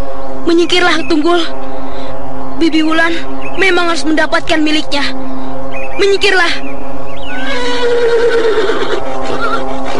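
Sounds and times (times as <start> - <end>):
steady low hum: 0.0 - 9.9
speech: 0.5 - 1.7, 2.6 - 5.3, 6.0 - 6.7
white horse neighing: 7.3 - 9.9.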